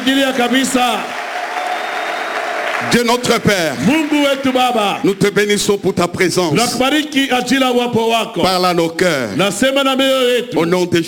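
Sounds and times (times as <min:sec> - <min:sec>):
speech: 0:00.0 - 0:01.1, 0:02.8 - 0:11.0
church congregation applauding loudly: 0:00.0 - 0:05.9.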